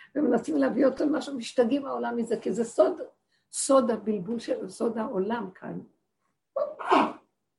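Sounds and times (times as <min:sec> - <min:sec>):
speech: 0:00.1 - 0:06.0
person sneezing: 0:06.6 - 0:07.3.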